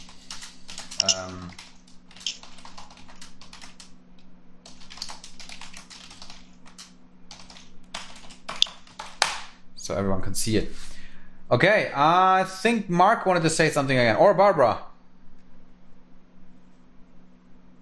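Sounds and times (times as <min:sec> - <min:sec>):
typing on a computer keyboard: 0:00.0 - 0:04.0, 0:04.6 - 0:09.2
speech: 0:01.0 - 0:01.6, 0:09.9 - 0:10.8, 0:11.5 - 0:14.9.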